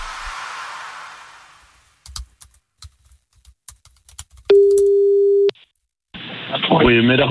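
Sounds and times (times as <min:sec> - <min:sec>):
telephone ringing tone on the line: 0:04.5 - 0:05.5
speech: 0:06.9 - 0:07.2.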